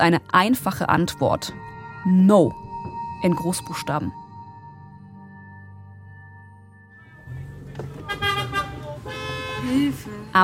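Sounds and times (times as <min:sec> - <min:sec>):
speech: 0:00.0 - 0:02.6, 0:03.2 - 0:04.2, 0:09.7 - 0:10.4
car horns honking in chaotic city traffic: 0:07.3 - 0:10.3.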